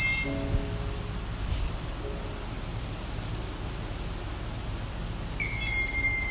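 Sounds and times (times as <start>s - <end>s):
steady outdoor hiss: 0.0s - 6.2s
Cooper's hawk screeching an alarm call in a forest: 5.4s - 6.2s.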